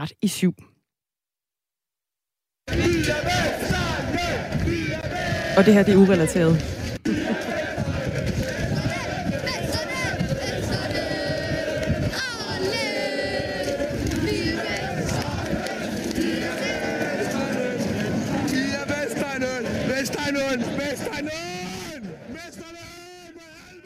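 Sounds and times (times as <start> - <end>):
speech: 0.0 - 0.7, 5.6 - 6.9
large crowd of football fans shouting and cheering: 2.7 - 23.8
laughter: 5.6 - 13.2.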